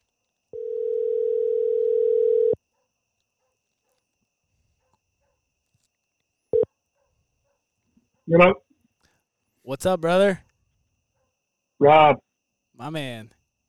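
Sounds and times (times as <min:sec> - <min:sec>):
telephone ringing tone as a call is placed: 0:00.5 - 0:02.6
speech: 0:08.3 - 0:08.6, 0:09.7 - 0:10.5, 0:11.8 - 0:12.2, 0:12.8 - 0:13.4.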